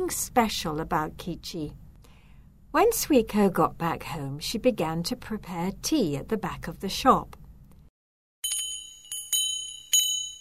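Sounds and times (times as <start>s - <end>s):
speech: 0.0s - 1.8s, 2.7s - 7.4s
small shop door bells tinkling: 8.4s - 10.4s.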